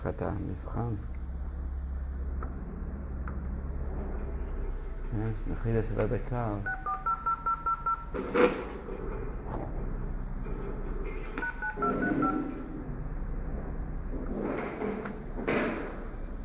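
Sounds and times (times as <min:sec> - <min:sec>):
speech: 0:00.0 - 0:01.2, 0:05.1 - 0:06.8, 0:08.1 - 0:09.8
steady low rumble: 0:00.0 - 0:16.4
touch-tone telephone dialing beeps: 0:06.6 - 0:08.1, 0:11.4 - 0:12.6.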